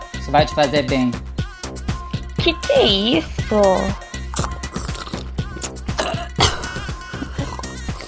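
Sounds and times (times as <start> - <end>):
speech: 0.3 - 1.3, 2.4 - 4.0
gulping: 4.3 - 8.0
person coughing and sputtering choking on a thick drink of blood: 4.3 - 8.0
throat-clearing bursts: 6.0 - 8.0.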